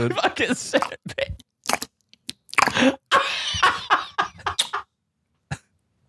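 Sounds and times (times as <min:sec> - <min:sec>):
laughter: 0:00.0 - 0:01.3, 0:02.7 - 0:04.8
speech: 0:00.0 - 0:01.3
person with a very dry mouth gulping: 0:00.7 - 0:03.0
dry mouth smacking sounds: 0:00.8 - 0:02.9.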